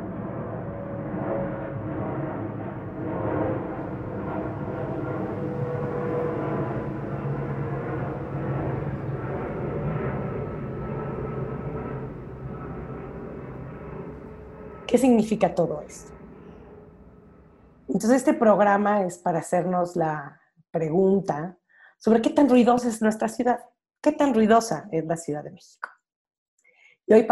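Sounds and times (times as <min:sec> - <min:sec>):
airplane passing overhead above Mexico City: 0:00.0 - 0:18.0
speech: 0:14.9 - 0:16.2, 0:18.0 - 0:26.0, 0:27.1 - 0:27.2.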